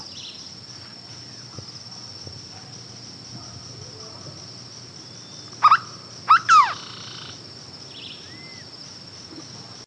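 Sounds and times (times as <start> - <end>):
Hooded berryeater Carpornis cucullata whistling: 5.2 - 7.3, 8.0 - 8.7.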